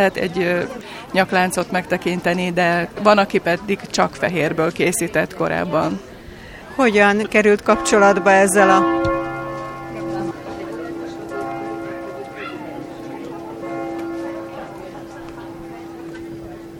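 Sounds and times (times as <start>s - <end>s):
speech: 0.0s - 6.1s, 6.8s - 9.0s
faint voices murmuring: 0.0s - 16.7s
church bell ringing with a sustained humming tone: 7.6s - 16.7s.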